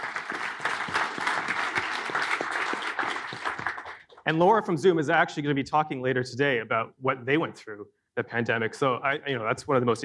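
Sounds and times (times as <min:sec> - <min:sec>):
room full of colleagues applauding: 0:00.0 - 0:04.2
speech: 0:04.3 - 0:10.0.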